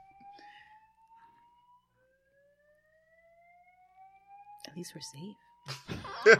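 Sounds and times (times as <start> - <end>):
fire alarm with shrill rising electronic tone: 0.0 - 6.3
speech: 4.8 - 6.3
laughter: 5.7 - 6.3.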